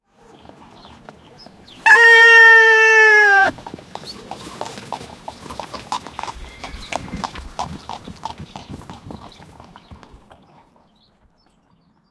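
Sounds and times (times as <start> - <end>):
horse neighing: 1.9 - 3.6.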